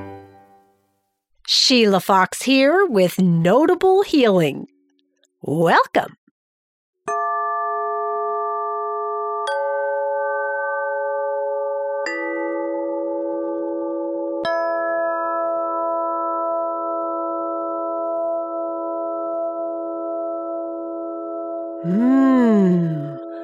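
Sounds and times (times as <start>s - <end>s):
speech: 1.7s - 4.7s, 5.4s - 6.2s
ringing chimes: 7.1s - 17.9s
wavering tone: 7.8s - 23.4s.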